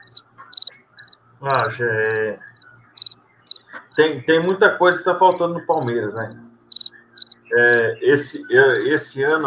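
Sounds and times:
cricket chirping: 0.0s - 4.0s, 5.3s - 7.8s, 8.7s - 8.9s
speech: 1.4s - 2.5s, 4.0s - 6.4s, 7.5s - 9.4s.

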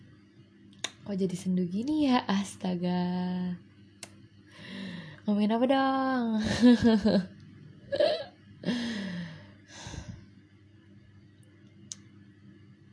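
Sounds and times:
speech: 1.1s - 3.7s, 5.3s - 7.3s, 7.9s - 8.8s
loud breathing into the microphone: 4.5s - 5.2s, 8.6s - 10.3s
laughter: 6.5s - 7.3s.

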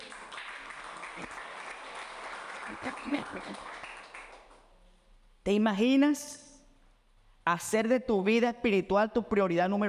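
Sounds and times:
audience applauding: 0.0s - 4.7s
speech: 2.7s - 3.8s, 5.5s - 6.4s, 7.5s - 9.8s.

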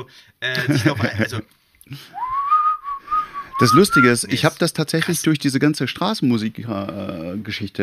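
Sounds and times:
speech: 0.0s - 2.4s, 3.6s - 7.8s
laughter: 0.6s - 1.4s
person whistling a short out-of-tune melodic phrase: 2.2s - 4.2s.

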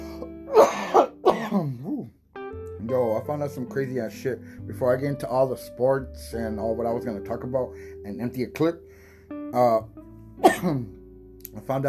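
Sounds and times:
harsh chesty coughs: 0.5s - 1.8s, 10.4s - 10.9s
speech: 3.4s - 8.9s, 9.5s - 11.0s, 11.6s - 11.8s.

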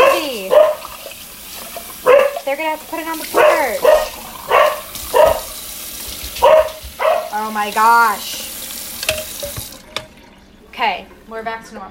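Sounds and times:
dogs barking: 0.0s - 1.2s, 1.8s - 7.4s
speech: 2.5s - 4.2s, 7.4s - 8.3s, 10.8s - 11.9s.

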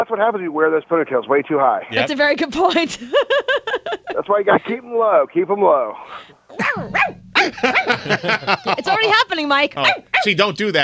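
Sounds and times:
speech: 0.0s - 10.8s
laughter: 2.7s - 4.8s, 7.4s - 9.4s
woman yipping high-pitched barks in imitation of a small dog: 6.6s - 8.0s.

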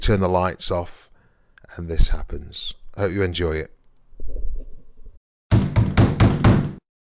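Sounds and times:
speech: 0.0s - 1.1s, 1.7s - 4.4s
loud firm knocking on a house door: 5.5s - 6.8s.

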